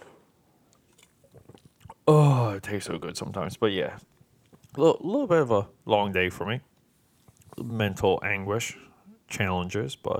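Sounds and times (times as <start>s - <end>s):
small slurping bursts: 0.7s - 2.1s, 7.0s - 7.8s
person sipping an energy drink: 0.7s - 2.2s, 7.0s - 7.7s
speech: 2.1s - 6.7s, 7.6s - 10.1s.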